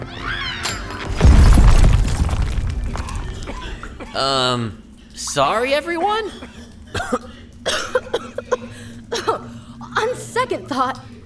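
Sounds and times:
loud booming explosion with crackling tail: 0.6s - 4.2s
speech: 4.2s - 6.6s, 10.5s - 11.1s.

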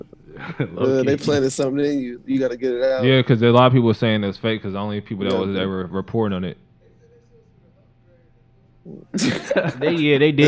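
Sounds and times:
laughter: 0.4s - 3.6s, 9.2s - 10.4s
speech: 0.5s - 6.6s, 8.8s - 10.4s
person sneezing: 9.2s - 9.9s.

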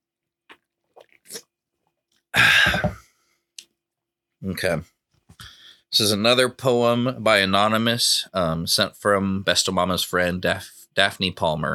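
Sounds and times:
someone sipping a fizzy drink: 0.5s - 1.6s
speech: 4.5s - 5.0s, 6.0s - 11.7s.

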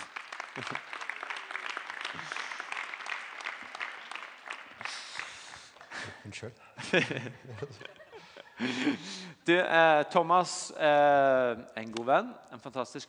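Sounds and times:
audience applause: 0.0s - 6.1s
laughter: 0.5s - 1.0s, 6.8s - 9.2s
speech: 0.6s - 0.9s, 6.2s - 8.0s, 8.6s - 13.0s.

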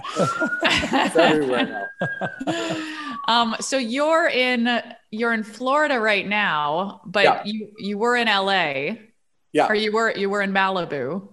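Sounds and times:
people laughing: 0.0s - 3.2s
emergency siren wailing: 0.0s - 3.7s
speech: 0.2s - 11.3s.

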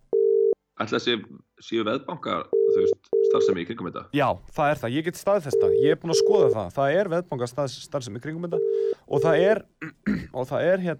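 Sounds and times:
telephone ringback tone of an outgoing call: 0.1s - 0.6s, 5.5s - 6.6s, 8.6s - 9.4s
speech: 0.8s - 10.9s.

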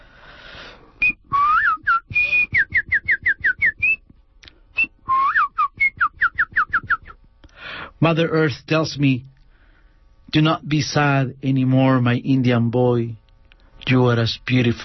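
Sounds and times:
person whistling a lilting tune: 1.0s - 4.1s, 4.8s - 7.2s
person reading aloud in English: 8.0s - 9.3s, 10.3s - 13.2s, 13.8s - 14.8s
speech: 8.0s - 9.3s, 10.3s - 13.2s, 13.9s - 14.8s.

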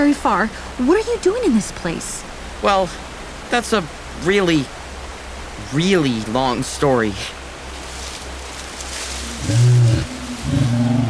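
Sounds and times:
speech: 0.0s - 4.8s, 5.6s - 7.4s
lion roaring: 9.4s - 11.0s.

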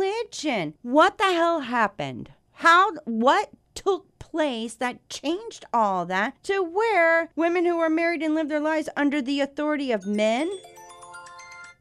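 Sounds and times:
speech: 0.3s - 10.8s
mobile phone ringtone with bright repeating electronic melody: 10.0s - 11.7s.

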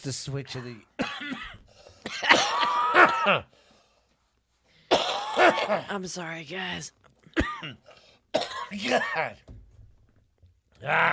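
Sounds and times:
speech: 0.0s - 1.0s, 2.2s - 3.6s, 5.4s - 7.8s, 8.7s - 9.5s, 10.8s - 11.1s
person coughing harshly in a coughing fit: 0.6s - 3.5s, 4.9s - 5.9s, 7.3s - 9.4s.

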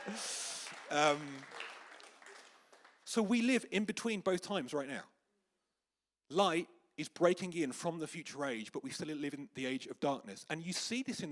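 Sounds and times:
person cheering: 0.0s - 1.5s
crowd applauding: 0.0s - 3.5s
speech: 0.1s - 1.6s, 3.1s - 5.1s, 6.3s - 11.2s.

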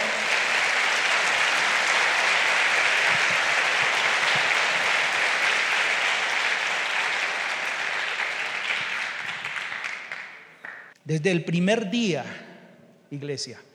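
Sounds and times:
congregation applauding: 0.0s - 11.0s
speech: 11.1s - 12.4s, 13.1s - 13.7s.

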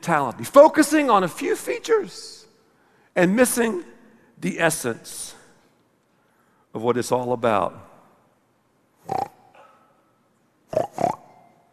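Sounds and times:
speech: 0.0s - 2.4s, 3.2s - 5.4s, 6.8s - 7.9s, 9.1s - 9.3s
pig grunting: 10.7s - 11.4s.

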